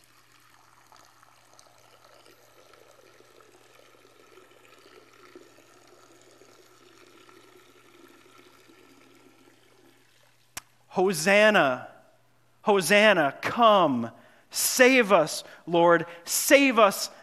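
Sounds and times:
steady stream of water pouring out: 0.0 - 10.8
speech: 11.0 - 11.9, 12.7 - 17.2.

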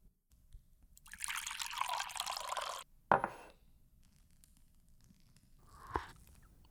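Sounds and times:
hot sage tea pouring into a glass: 1.0 - 2.8
glass clinking: 1.8 - 3.5
quiet knock: 3.1 - 3.4.

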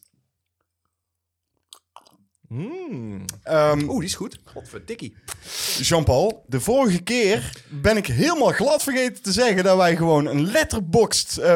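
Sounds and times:
soft mouth clicks while sipping a drink: 1.7 - 4.5, 5.2 - 5.6, 7.5 - 8.0
speech: 2.5 - 11.5.

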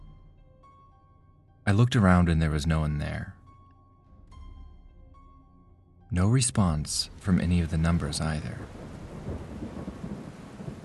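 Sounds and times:
speech: 1.7 - 3.4, 6.1 - 9.4
heavy rain at night: 7.1 - 10.8.

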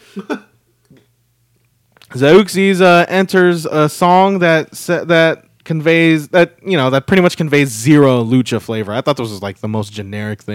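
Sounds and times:
burps: 0.1 - 0.6
speech: 0.2 - 0.4, 2.2 - 10.5.

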